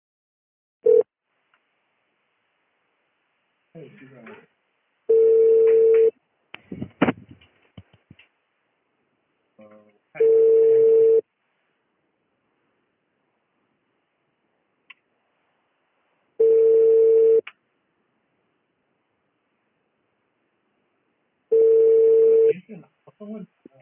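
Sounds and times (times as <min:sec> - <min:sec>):
speech: 0:03.8 - 0:04.5, 0:23.2 - 0:23.6
telephone ringback tone on an outgoing call: 0:05.1 - 0:06.1, 0:10.2 - 0:11.2, 0:16.4 - 0:17.4, 0:21.5 - 0:22.5.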